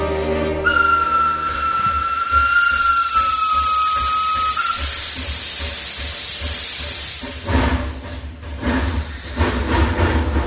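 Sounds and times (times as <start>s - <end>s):
train running with a rumble and hiss: 0.0s - 10.4s
long high train whistle: 0.6s - 5.8s
rhythmic clatter of a train: 0.7s - 10.4s.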